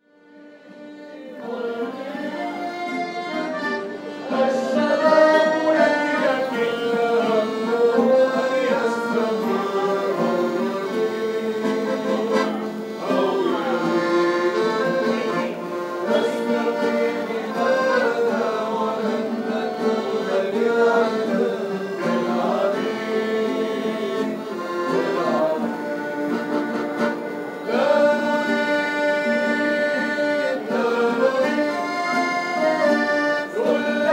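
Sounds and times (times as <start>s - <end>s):
group playing with accordion: 0.0s - 34.1s.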